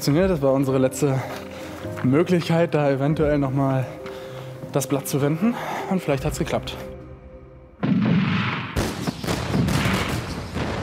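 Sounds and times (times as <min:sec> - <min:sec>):
speech: 0:00.0 - 0:04.0, 0:04.7 - 0:06.9
gunboat cannon fire: 0:07.8 - 0:10.8.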